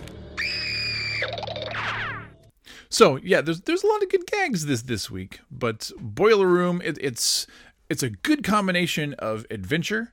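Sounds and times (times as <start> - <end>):
shrill high-pitched cartoon scream breaking into squeaky yelps: 0.4 - 2.4
speech: 2.9 - 10.1.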